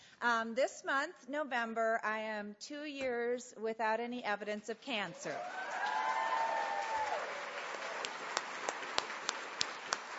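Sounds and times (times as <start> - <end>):
speech: 0.2 - 5.8
audience applauding: 5.4 - 10.1.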